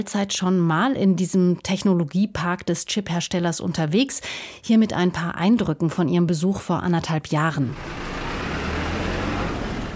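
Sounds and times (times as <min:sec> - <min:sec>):
speech: 0:00.0 - 0:08.2
shuttle bus engine and road rumble in a chipmaker's technology park: 0:07.4 - 0:09.9.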